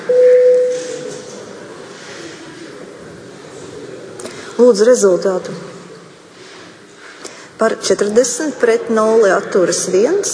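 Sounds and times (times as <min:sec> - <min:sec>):
parliament chamber bell signalling a vote: 0:00.0 - 0:01.1
speech: 0:04.6 - 0:05.7, 0:07.6 - 0:10.3.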